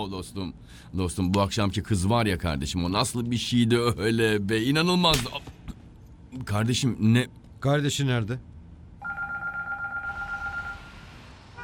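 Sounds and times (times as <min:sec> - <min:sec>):
speech: 0:00.0 - 0:05.6, 0:06.3 - 0:08.5
telephone ringing in a warbling electronic trill: 0:09.0 - 0:10.9.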